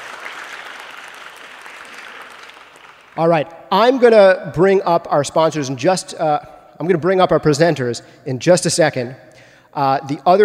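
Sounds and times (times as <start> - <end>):
audience applause: 0.0 - 3.2
speech: 3.2 - 10.4.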